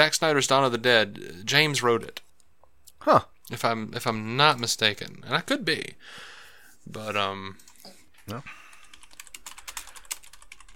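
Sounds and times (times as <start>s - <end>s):
speech: 0.0s - 2.2s, 3.0s - 6.3s, 6.9s - 8.6s
person typing on a computer keyboard: 8.7s - 10.7s.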